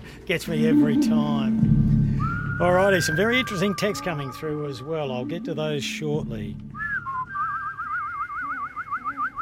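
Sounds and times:
speech: 0.3 - 1.8, 2.6 - 6.8
person whistling a sustained trilling tone: 0.6 - 4.8, 6.7 - 9.4.

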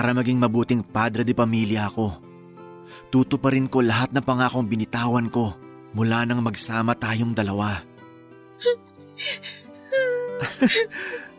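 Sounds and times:
speech: 0.0 - 2.3, 2.9 - 7.9, 8.6 - 11.3
person crying and whimpering: 8.6 - 11.3
laughter: 10.4 - 11.1.

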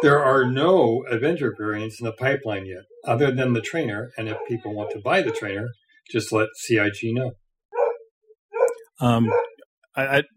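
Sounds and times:
dog barking: 0.0 - 0.7, 3.4 - 5.6, 7.8 - 9.6
speech: 0.0 - 7.4, 9.0 - 10.3.

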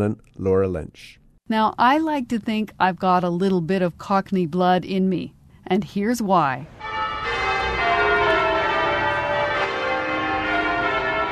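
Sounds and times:
speech: 0.0 - 7.0
church bells of a church in East London ringing: 6.7 - 11.3.

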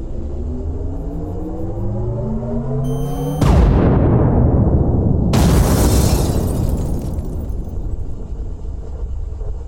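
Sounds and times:
rising electronic whine of a tactical laser locking and firing: 0.0 - 4.3
vehicle exploding: 3.4 - 8.6
crackling blast: 3.4 - 8.9.

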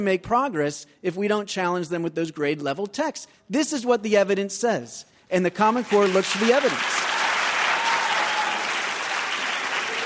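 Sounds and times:
speech: 0.0 - 7.1
audience applause at an education debate: 5.8 - 10.0.

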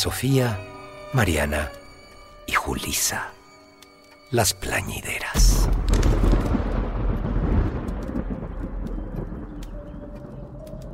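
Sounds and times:
speech: 0.0 - 1.8, 2.6 - 3.4, 4.3 - 6.2
deep rumbling roll of thunder: 5.4 - 10.9
steady wash of rain: 5.4 - 10.9.

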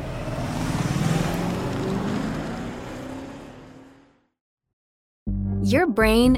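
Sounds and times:
rushing road and wind noise: 0.0 - 4.3
car engine accelerating hard to pass a truck: 0.0 - 4.4
speech: 5.6 - 6.3.

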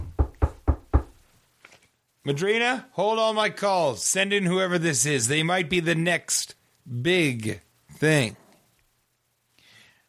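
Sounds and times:
firm knocks on a door: 0.0 - 1.2
speech: 2.3 - 8.4.

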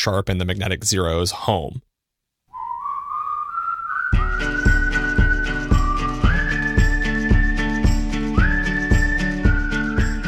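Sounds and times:
speech: 0.0 - 1.9
bright whistled melody in an indie pop song: 2.5 - 10.2
bass pulsing: 4.2 - 8.9.

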